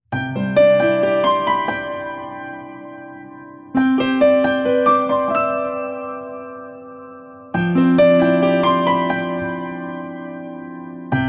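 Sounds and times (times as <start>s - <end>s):
piano: 0.0s - 11.2s.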